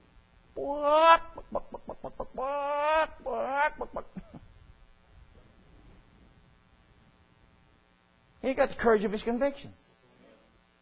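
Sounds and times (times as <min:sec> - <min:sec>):
chicken clucking and squawking: 0:00.8 - 0:04.2
speech: 0:08.5 - 0:09.9.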